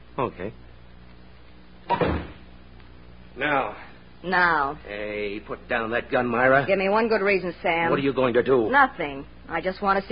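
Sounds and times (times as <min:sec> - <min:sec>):
speech: 0:00.2 - 0:00.7, 0:03.4 - 0:10.0
wooden door swinging shut: 0:01.9 - 0:02.4.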